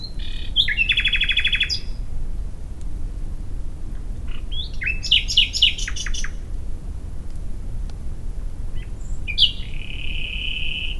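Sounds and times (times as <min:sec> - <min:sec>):
common nightingale Luscinia megarhynchos song: 0:00.0 - 0:02.1, 0:04.2 - 0:06.5, 0:08.7 - 0:10.9
low background rumble: 0:00.0 - 0:10.9.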